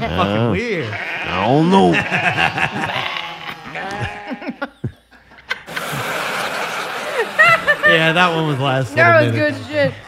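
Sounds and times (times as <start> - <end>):
several sheep bleating: 0.0 - 4.7
speech: 0.0 - 4.8, 7.9 - 10.0
laughter: 1.4 - 10.0.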